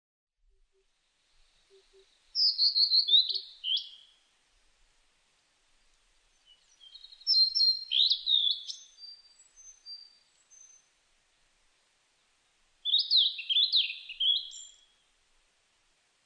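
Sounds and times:
blue-and-white flycatcher singing: 0:01.7 - 0:04.1, 0:06.5 - 0:10.9, 0:12.8 - 0:14.9
speech: 0:01.9 - 0:03.6.

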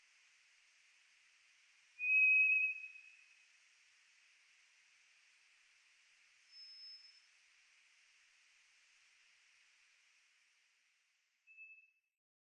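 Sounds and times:
White's thrush singing: 0:02.0 - 0:03.2.

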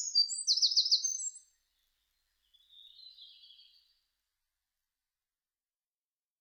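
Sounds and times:
Eurasian wren song with rapid trills: 0:00.0 - 0:04.0.

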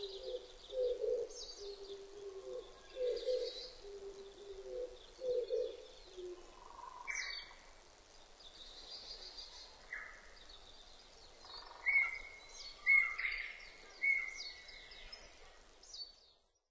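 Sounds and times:
Oriental turtle dove cooing in husky paired notes: 0:00.0 - 0:07.0
faint chirps from other birds: 0:00.0 - 0:16.6.

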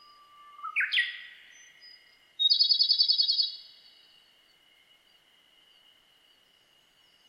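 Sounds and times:
Japanese robin song: 0:00.0 - 0:03.7.

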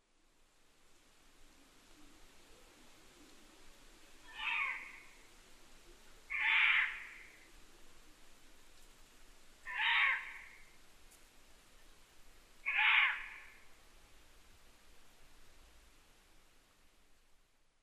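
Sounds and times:
Ural owl calling: 0:04.2 - 0:05.2, 0:06.3 - 0:07.4, 0:09.6 - 0:10.7, 0:12.6 - 0:13.6.

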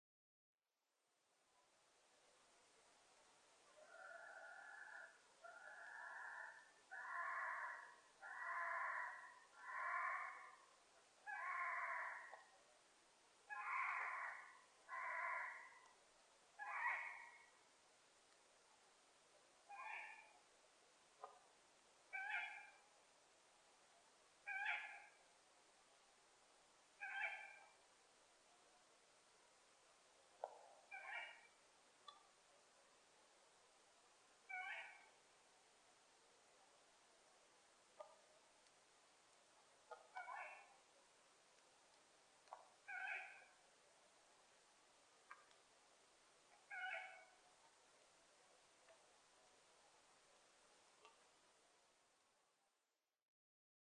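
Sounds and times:
owl: 0:03.7 - 0:10.6, 0:11.2 - 0:12.6, 0:13.5 - 0:15.9, 0:16.6 - 0:17.6, 0:19.7 - 0:20.4, 0:22.1 - 0:22.9, 0:24.4 - 0:25.3, 0:27.0 - 0:27.8, 0:30.4 - 0:32.2, 0:34.5 - 0:35.2, 0:39.9 - 0:40.8, 0:42.5 - 0:43.6, 0:46.6 - 0:47.4.

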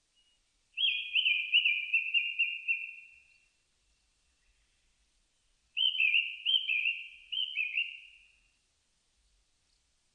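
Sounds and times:
Japanese thrush singing fluty slurred whistles: 0:00.8 - 0:03.2, 0:05.8 - 0:08.2.

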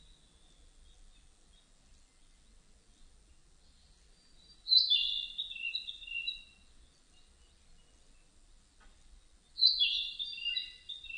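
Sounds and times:
narcissus flycatcher song of bright whistled notes: 0:04.4 - 0:06.5, 0:09.6 - 0:11.1.

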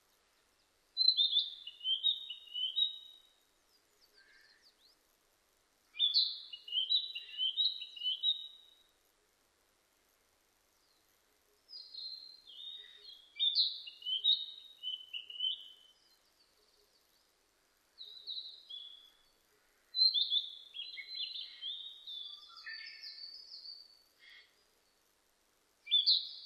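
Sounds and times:
Narcissus flycatcher singing: 0:01.0 - 0:03.3, 0:06.0 - 0:08.8, 0:11.7 - 0:16.8, 0:20.0 - 0:24.5, 0:25.9 - 0:26.4.

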